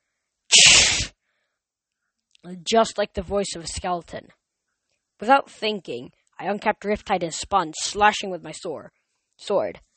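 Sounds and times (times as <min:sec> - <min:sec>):
person voicing a girl blowing her nose into a tissue: 0:00.5 - 0:01.1
speech: 0:02.4 - 0:04.4, 0:05.2 - 0:09.9.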